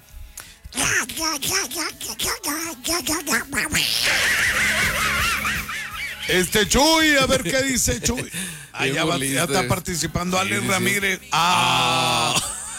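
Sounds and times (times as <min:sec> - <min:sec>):
person imitating duck quacks: 0:00.8 - 0:04.8
speech: 0:01.0 - 0:05.1, 0:06.3 - 0:12.5
people laughing: 0:03.8 - 0:09.2, 0:11.9 - 0:12.7.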